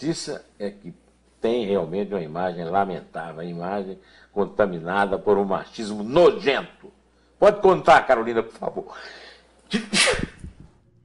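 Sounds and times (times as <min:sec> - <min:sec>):
speech: 0:00.0 - 0:10.4
person sneezing: 0:09.7 - 0:10.5.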